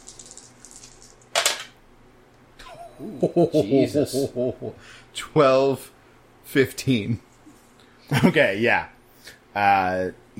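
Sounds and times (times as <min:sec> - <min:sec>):
glittery dice rolled during a tabletop roleplaying game: 0:00.0 - 0:01.8
laughter: 0:02.6 - 0:04.8
speech: 0:03.0 - 0:07.3, 0:08.1 - 0:09.0, 0:09.6 - 0:10.3.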